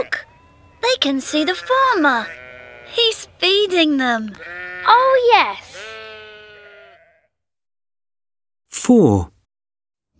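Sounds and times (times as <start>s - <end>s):
lamb bleating: 0.0s - 3.1s, 4.3s - 7.3s
speech: 1.0s - 5.7s, 8.8s - 9.3s.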